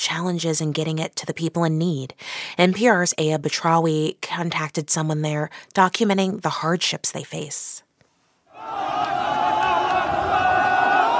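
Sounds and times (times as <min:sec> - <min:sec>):
speech: 0:00.0 - 0:07.8
huge crowd chanting a religious phrase in unison: 0:08.5 - 0:11.1.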